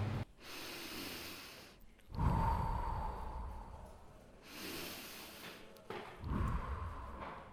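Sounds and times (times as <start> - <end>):
slow even breathing during yoga exercise: 0.3 - 7.5.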